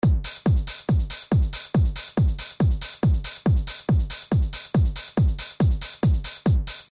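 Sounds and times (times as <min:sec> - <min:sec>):
loud drumming: 0:00.0 - 0:06.9.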